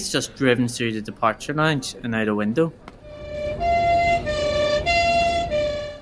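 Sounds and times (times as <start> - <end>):
speech: 0.0 - 2.9
ambulance siren wailing in an airport departure lounge: 3.1 - 5.9.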